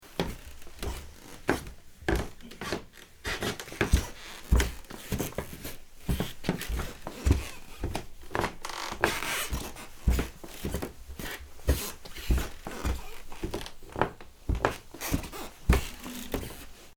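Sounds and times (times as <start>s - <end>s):
footsteps on wooden floor: 0.1s - 16.9s.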